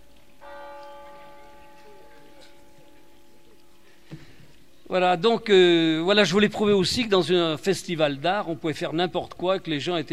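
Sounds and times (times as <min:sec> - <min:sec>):
church bells ringing: 0:00.0 - 0:04.1
speech: 0:04.9 - 0:10.1.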